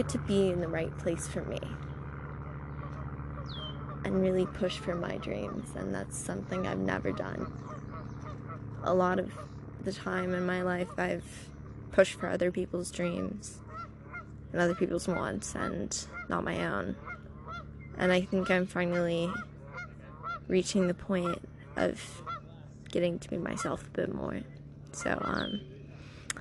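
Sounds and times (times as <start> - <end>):
speech: 0.0 - 1.9, 3.5 - 7.7, 8.8 - 13.6, 14.5 - 17.1, 18.0 - 19.5, 20.5 - 22.3, 22.9 - 25.7
geese honking at sunset: 2.7 - 11.4, 12.0 - 24.4, 25.0 - 26.2.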